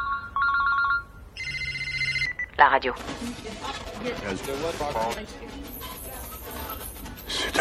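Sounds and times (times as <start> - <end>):
telephone ringing with electronic warble: 0.0 - 3.0
speech: 2.6 - 6.0.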